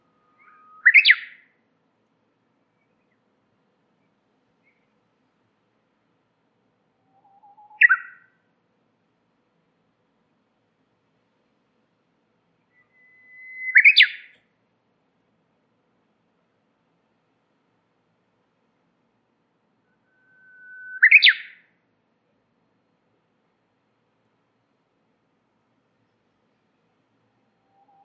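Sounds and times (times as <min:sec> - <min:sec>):
warbler singing: 0:00.1 - 0:01.4, 0:12.6 - 0:14.4, 0:19.9 - 0:21.6.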